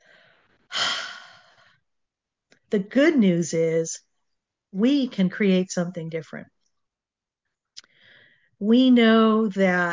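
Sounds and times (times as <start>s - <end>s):
deep breath: 0.0s - 1.8s, 7.8s - 8.6s
speech: 2.7s - 4.1s, 4.7s - 6.5s, 8.6s - 9.9s.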